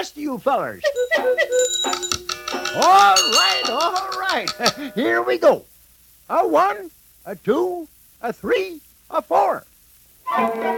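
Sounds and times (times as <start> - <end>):
speech: 0.0 - 5.7, 6.3 - 9.7, 10.3 - 10.7
cuckoo ship's French banjo and Swiss clocks chiming together: 1.0 - 5.0.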